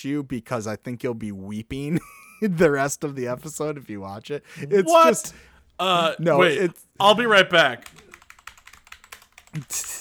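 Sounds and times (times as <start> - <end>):
speech: 0.0 - 8.0, 9.6 - 9.9
loud computer keyboard typing: 7.8 - 9.9.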